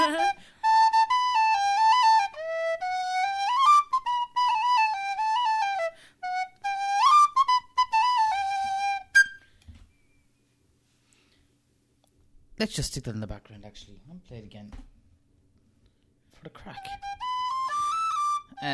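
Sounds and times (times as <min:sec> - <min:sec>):
bright reedy whistle playing a lively melody: 0:00.0 - 0:10.2, 0:16.7 - 0:18.7
speech: 0:12.6 - 0:15.0, 0:16.6 - 0:17.1.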